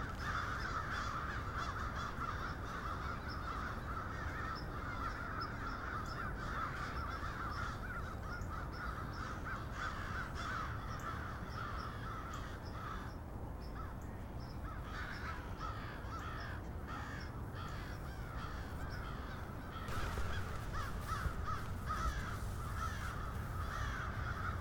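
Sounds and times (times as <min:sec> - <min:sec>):
crow flock cawing in Cincinnati: 0:00.0 - 0:14.0, 0:14.6 - 0:24.5
low hum: 0:18.7 - 0:24.5.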